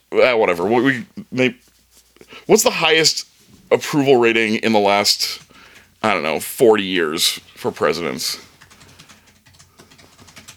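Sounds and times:
speech: 0.1 - 5.4, 6.0 - 8.5
fingers typing on a computer keyboard: 8.5 - 10.5.

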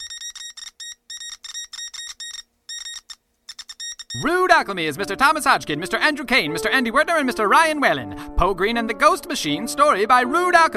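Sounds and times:
Morse code keyed out as electronic beeps on copper wire: 0.0 - 4.3
speech: 4.2 - 10.7.

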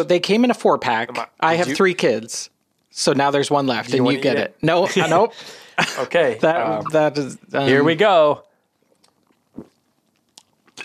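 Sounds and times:
speech: 0.0 - 8.5
biting and chewing a marshmallow-flavored candy: 8.8 - 10.8.

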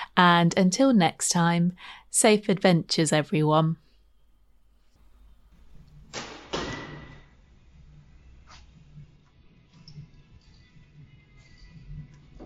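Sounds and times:
speech: 0.2 - 3.8
quiet outdoor ambience: 4.2 - 12.4
arrows striking an archery target: 6.1 - 7.2.

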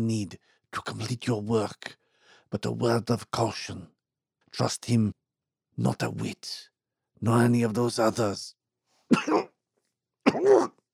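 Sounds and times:
speech: 0.0 - 3.9, 4.5 - 5.2, 5.8 - 9.4, 10.3 - 10.8
harsh raspy coughs: 9.1 - 9.6, 10.2 - 10.8.

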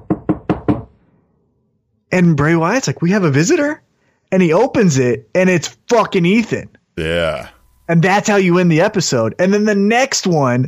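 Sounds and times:
knocking on a wooden door: 0.0 - 0.9
speech: 2.1 - 10.6.

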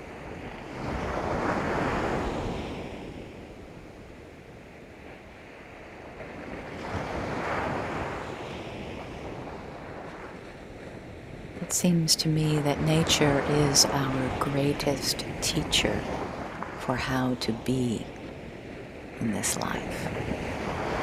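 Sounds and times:
steady wind noise: 0.0 - 16.9, 17.7 - 21.0
ocean waves washing onto the shore: 0.0 - 21.0
speech: 11.7 - 16.2, 16.8 - 18.2, 19.2 - 21.0.

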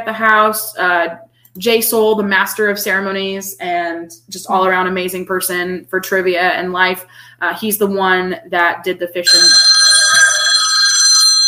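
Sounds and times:
speech: 0.0 - 9.6
telephone bell ringing with a bright metallic trill: 9.3 - 11.4.

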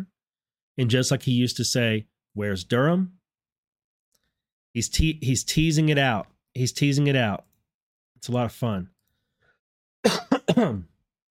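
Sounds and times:
speech: 0.8 - 3.2, 4.7 - 7.5, 8.2 - 8.9, 10.0 - 10.9
harsh raspy coughs: 10.0 - 10.9.

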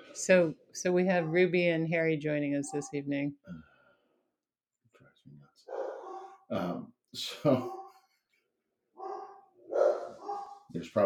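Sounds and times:
speech: 0.2 - 3.7, 6.5 - 7.8, 10.7 - 11.0
dog barking: 5.6 - 6.5, 7.6 - 8.0, 9.0 - 10.7.

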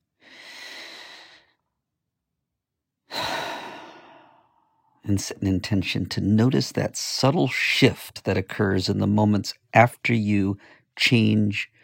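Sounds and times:
person taking a deep breath: 0.2 - 1.6, 3.1 - 5.0
speech: 5.1 - 11.8.

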